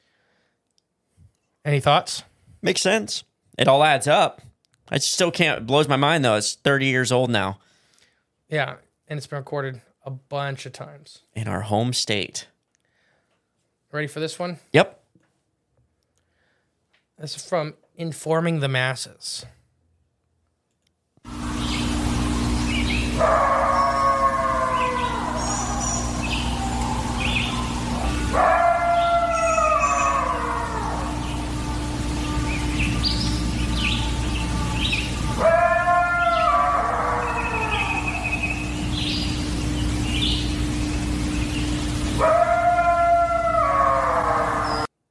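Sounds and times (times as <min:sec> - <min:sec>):
speech: 0:01.6 - 0:07.7, 0:08.5 - 0:12.5, 0:13.9 - 0:15.0, 0:17.2 - 0:19.6, 0:23.2 - 0:23.6
constant low droning hum: 0:21.3 - 0:44.9
creature howling outdoors: 0:22.2 - 0:39.3, 0:42.1 - 0:44.9.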